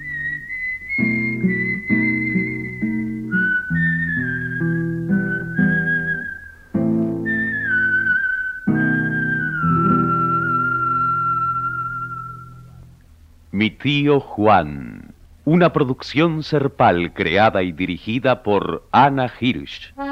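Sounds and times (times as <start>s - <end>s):
man whistling a tune while walking away: 0.0s - 12.8s
speech: 13.8s - 20.0s.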